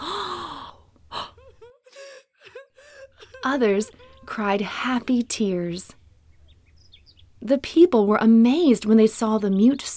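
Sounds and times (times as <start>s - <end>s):
group of people gasping in awe: 0.0s - 3.3s
laughter: 1.4s - 4.4s
speech: 3.4s - 6.0s, 7.4s - 9.9s.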